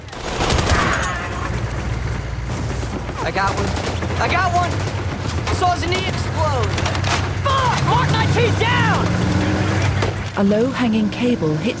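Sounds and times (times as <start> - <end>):
gunfire in street fighting fired from a moving vehicle in Iraq: 0.0 - 1.7, 2.7 - 10.2
speech: 3.3 - 5.0, 5.6 - 9.3, 10.4 - 11.7.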